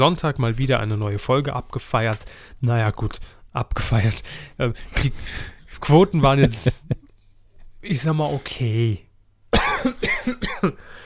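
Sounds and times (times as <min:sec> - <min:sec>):
speech: 0:00.0 - 0:07.0, 0:07.8 - 0:09.1, 0:09.8 - 0:11.0
laughter: 0:06.2 - 0:07.1
person coughing: 0:09.5 - 0:10.9.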